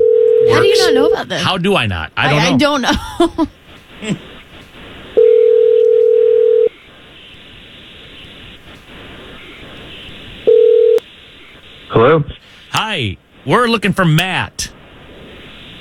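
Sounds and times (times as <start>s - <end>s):
telephone dial tone while placing a phone call: 0.0s - 0.6s, 5.2s - 6.7s, 10.5s - 11.0s
faint hiss: 0.0s - 15.8s
speech: 0.6s - 4.3s, 12.0s - 14.8s.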